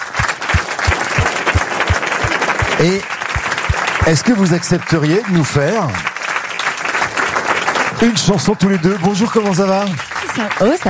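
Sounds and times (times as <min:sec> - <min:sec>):
audience applause, an ovation: 0:00.0 - 0:10.8
speech: 0:02.8 - 0:03.2, 0:04.0 - 0:06.1, 0:08.0 - 0:10.8.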